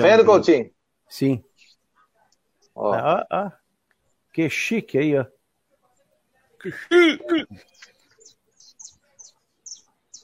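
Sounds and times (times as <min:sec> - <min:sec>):
speech: 0:00.0 - 0:01.5, 0:02.8 - 0:03.6, 0:04.4 - 0:05.4, 0:06.6 - 0:07.9
small bird singing short bright chirps: 0:01.4 - 0:02.9, 0:07.6 - 0:10.2.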